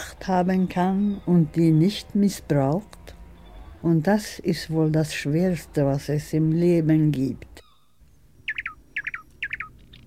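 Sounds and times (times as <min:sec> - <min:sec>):
speech: 0:00.2 - 0:03.0, 0:03.8 - 0:07.5
nightingale singing: 0:00.4 - 0:02.2, 0:07.6 - 0:10.0.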